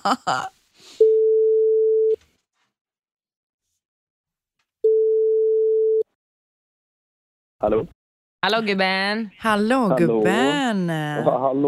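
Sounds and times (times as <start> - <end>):
speech: 0.0 - 1.0, 7.6 - 11.6
phone ringback tone while calling: 1.0 - 2.1, 4.8 - 6.0.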